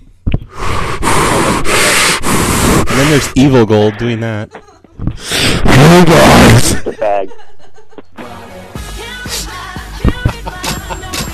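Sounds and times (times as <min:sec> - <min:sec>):
heavy breathing into a phone: 0:00.4 - 0:03.3, 0:05.1 - 0:05.7
speech: 0:03.0 - 0:07.6
laughter: 0:06.6 - 0:09.1, 0:10.0 - 0:11.3.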